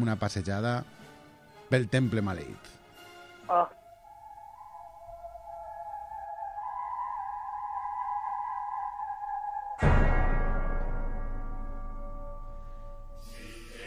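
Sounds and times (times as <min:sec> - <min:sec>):
speech: 0:00.0 - 0:01.1, 0:01.7 - 0:02.8, 0:03.5 - 0:03.8
ominous cult-like film soundtrack eerie held drone tones: 0:03.6 - 0:13.8.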